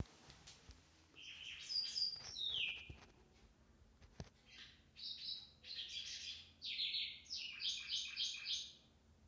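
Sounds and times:
soft background noise: 0.0 - 9.2
white-browed wagtail Motacilla maderaspatensis chirping: 1.2 - 3.1, 4.4 - 8.9.

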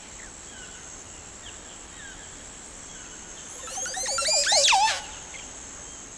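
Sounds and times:
Montezuma oropendola Psarocolius montezuma bubbling gurgling notes: 3.5 - 5.5
constant high-pitched insect drone: 3.5 - 5.5.

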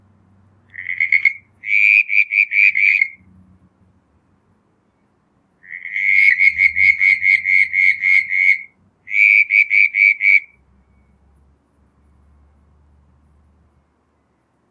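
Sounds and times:
Southern brown tree frog creaking calls: 0.7 - 3.3, 5.6 - 10.6.

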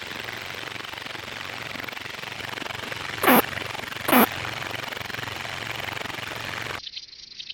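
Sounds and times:
Alpine saddle bush-cricket Ephippiger terrestris chirping: 0.0 - 6.8
faint rapid ticking: 0.0 - 6.8.

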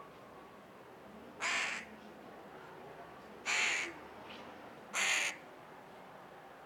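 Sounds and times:
carrion crow Corvus corone uttering rough grating caws: 1.4 - 1.9, 3.5 - 4.0, 5.0 - 5.4.

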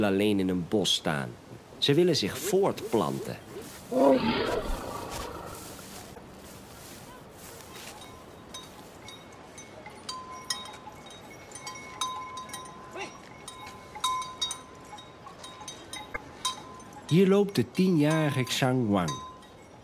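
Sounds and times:
speech: 0.0 - 4.8, 17.1 - 19.3
steady outdoor hum: 0.0 - 19.8
elephants rumbling: 2.2 - 6.2
elephant trumpeting: 2.3 - 5.8
light metallic clinks: 7.9 - 19.8.

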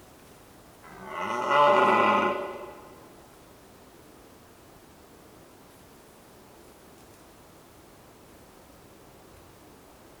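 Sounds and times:
Red deer roaring on Volovec hill in Slovakia: 0.9 - 3.0.

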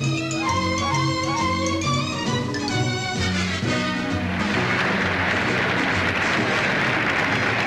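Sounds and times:
band music: 0.0 - 6.6
dense clapping from a crowd of spectators: 4.0 - 7.6.

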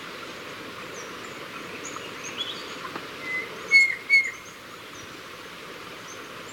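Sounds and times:
steady hiss: 0.0 - 6.5
White-bellied Antpitta Grallaria hypoleuca short flat whistled notes: 3.2 - 4.4.

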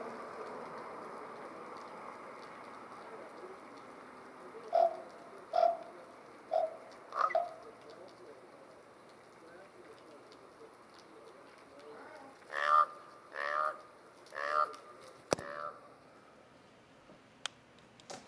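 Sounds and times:
two ravens croaking to each other: 0.0 - 9.3, 11.7 - 16.0.

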